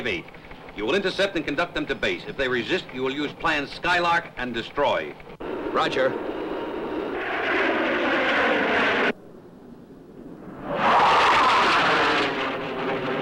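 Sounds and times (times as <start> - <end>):
speech: 0.0 - 6.3
airplane engines droning overhead: 0.0 - 13.2.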